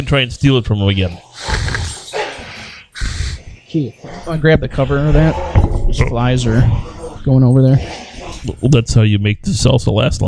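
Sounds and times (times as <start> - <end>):
speech: 0.0 - 1.8, 3.7 - 10.2
dogs making rough growly huffs and snorts: 0.9 - 8.9.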